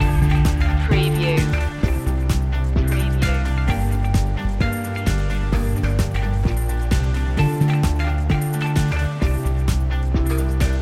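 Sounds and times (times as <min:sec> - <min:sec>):
Asian corporate music loop: 0:00.0 - 0:10.8.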